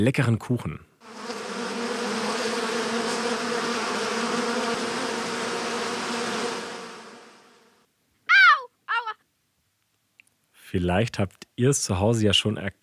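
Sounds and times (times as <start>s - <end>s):
speech: 0.0s - 1.3s, 10.7s - 12.8s
several bees buzzing together: 1.0s - 7.8s.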